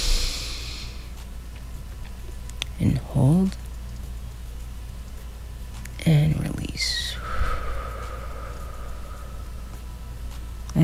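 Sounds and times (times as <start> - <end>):
person taking a slow deep breath in: 0.0 - 1.1, 7.1 - 10.3
speech: 2.8 - 3.6, 6.1 - 7.0.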